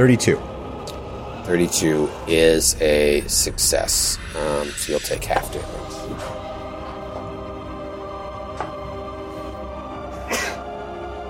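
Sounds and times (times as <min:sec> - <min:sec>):
speech: 0:00.0 - 0:00.5, 0:01.5 - 0:06.4
person sneezing: 0:10.2 - 0:10.6.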